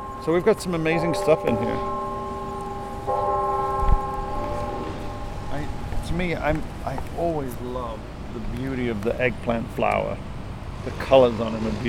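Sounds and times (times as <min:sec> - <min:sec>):
university clock tower bell chiming outdoors by a campus garden: 0:00.0 - 0:07.6
speech: 0:00.2 - 0:02.0, 0:06.1 - 0:11.8.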